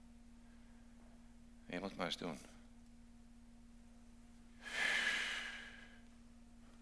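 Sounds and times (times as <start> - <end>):
steady low hum: 0.0 - 6.8
speech: 1.7 - 2.6
slow deep breath out: 4.6 - 6.0.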